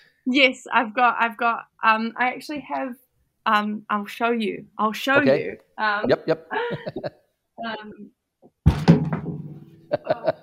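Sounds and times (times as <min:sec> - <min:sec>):
speech: 0:00.2 - 0:08.8, 0:09.9 - 0:10.4
laughter: 0:06.1 - 0:07.1, 0:09.9 - 0:10.4
wooden chair tipping over and hitting the floor: 0:08.7 - 0:09.8.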